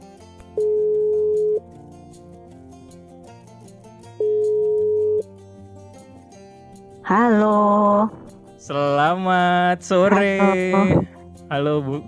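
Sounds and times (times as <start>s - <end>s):
soft music: 0.0s - 12.0s
phone ringback tone while placing a call: 0.6s - 1.6s, 4.2s - 5.2s
speech: 8.7s - 12.0s.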